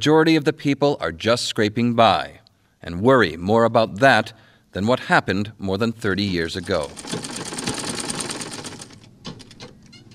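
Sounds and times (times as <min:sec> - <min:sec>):
speech: 0:00.0 - 0:07.4
sewing machine stitching in a tiny shop in a Vietnamese village: 0:06.5 - 0:10.1.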